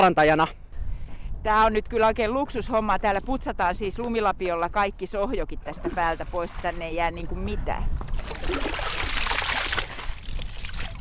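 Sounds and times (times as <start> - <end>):
speech: 0.0 - 0.6, 1.4 - 8.9
water splashing and sloshing onto an icy surface: 8.2 - 11.0.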